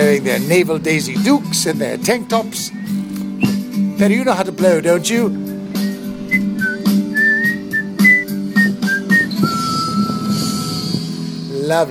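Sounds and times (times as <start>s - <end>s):
speech: 0.2s - 2.9s, 4.0s - 5.8s, 11.7s - 11.8s
person whistling a short bouncy tune: 2.6s - 3.6s, 5.8s - 10.9s.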